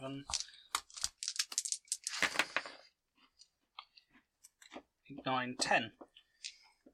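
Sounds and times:
speech: 0.0s - 0.4s, 5.3s - 6.0s
handful of dice rolled during a game clattering on a hard surface: 0.3s - 2.7s.

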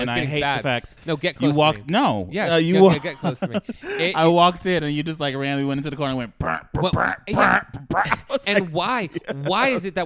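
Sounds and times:
speech: 0.0s - 10.0s
laughter: 2.5s - 4.4s, 7.3s - 10.0s
vocal imitation of a fart: 6.4s - 8.3s.

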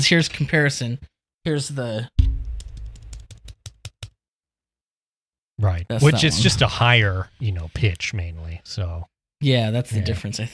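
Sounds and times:
speech: 0.0s - 2.2s, 5.6s - 10.5s
typing on a plastic wireless keyboard: 2.7s - 4.2s.

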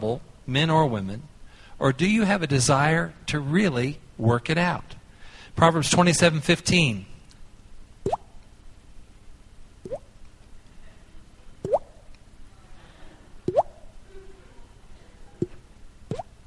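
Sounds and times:
speech: 0.0s - 5.0s, 5.6s - 7.1s
person imitating dripping water with their mouth: 8.0s - 8.4s, 9.8s - 10.1s, 11.6s - 12.0s, 13.5s - 13.8s, 15.4s - 16.3s.

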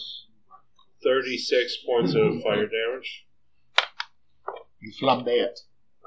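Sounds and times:
speech: 1.2s - 3.3s, 4.8s - 5.7s
dice rolling on a table during a tabletop role-playing game: 3.8s - 4.1s.

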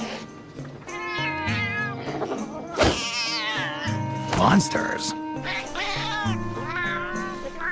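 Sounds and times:
cat meowing insistently: 0.9s - 4.0s, 5.4s - 7.6s
speech: 4.4s - 5.6s.

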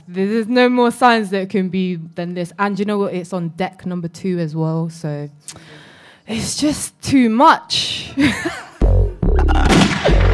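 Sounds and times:
speech: 0.1s - 8.7s
gunshot sound effects: 9.7s - 10.3s.

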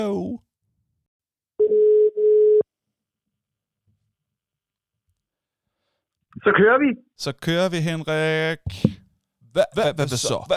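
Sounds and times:
speech: 0.0s - 0.4s, 6.4s - 10.5s
electronic phone dialing tones: 1.6s - 2.6s.

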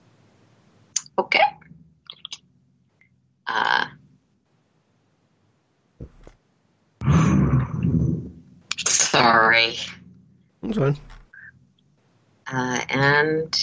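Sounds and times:
speech: 1.2s - 1.5s, 9.5s - 10.0s, 10.6s - 11.1s, 12.5s - 13.6s
growling roar-like rumbles of a science-fiction spaceship: 7.0s - 11.5s.

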